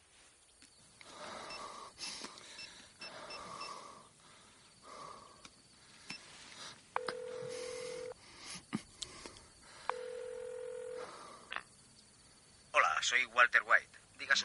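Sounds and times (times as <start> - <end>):
mobile phone dialing inside a car: 7.0 - 8.2, 9.9 - 11.0
speech: 13.1 - 14.4.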